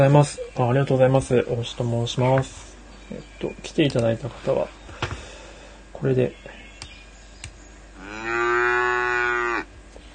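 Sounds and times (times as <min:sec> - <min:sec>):
speech: 0:00.0 - 0:04.8, 0:06.0 - 0:06.5
cow mooing: 0:08.0 - 0:09.7.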